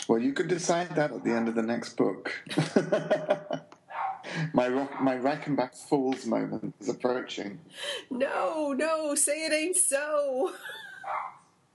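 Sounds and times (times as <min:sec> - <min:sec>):
speech: 0:00.0 - 0:11.2
laughter: 0:02.3 - 0:03.7, 0:04.3 - 0:05.5, 0:06.2 - 0:07.3
dog barking in short high-pitched yelps: 0:03.9 - 0:05.4, 0:11.0 - 0:11.4.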